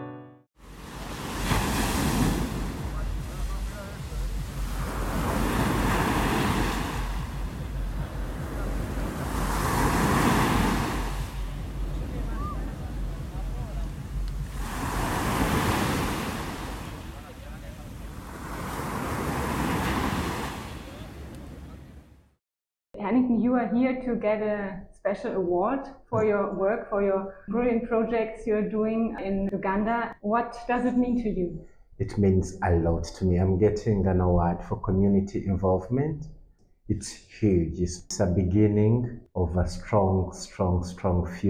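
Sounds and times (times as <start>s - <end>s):
constant hiss of surf: 0.6s - 21.8s
Mediterranean Sea waves rolling in and washing out: 0.6s - 22.1s
speech: 23.3s - 41.4s.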